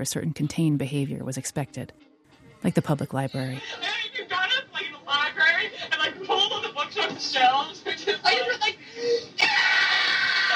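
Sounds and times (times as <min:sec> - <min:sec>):
speech: 0:00.0 - 0:04.2, 0:07.0 - 0:09.3
laughter: 0:03.6 - 0:10.5
girl screaming on old tape recording: 0:09.4 - 0:10.5.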